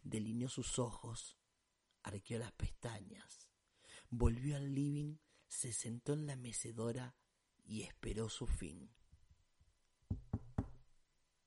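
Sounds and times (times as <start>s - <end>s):
speech: 0.1s - 1.4s, 2.0s - 9.0s
firm knocks on a door: 10.1s - 10.8s.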